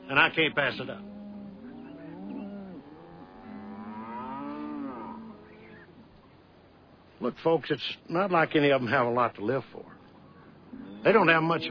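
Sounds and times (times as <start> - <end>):
herd of cows mooing in long bellows: 0.0 - 5.9, 10.7 - 11.6
speech: 0.1 - 1.2, 7.2 - 10.0, 11.0 - 11.6.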